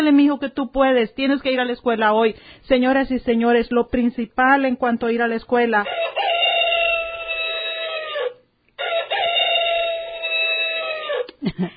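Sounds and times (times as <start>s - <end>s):
speech: 0.1s - 6.4s
rooster-crow alarm clock: 5.8s - 11.3s.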